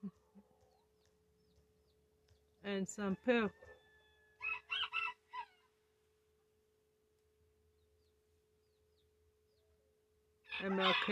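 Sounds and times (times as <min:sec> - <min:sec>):
speech: 0:02.7 - 0:03.7
rooster crowing: 0:03.5 - 0:05.7, 0:10.5 - 0:11.0.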